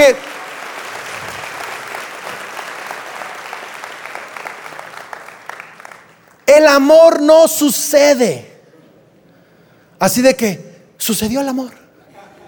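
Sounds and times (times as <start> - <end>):
audience applause: 0.0 - 6.4
speech: 0.1 - 0.3, 6.6 - 8.5, 10.0 - 11.8.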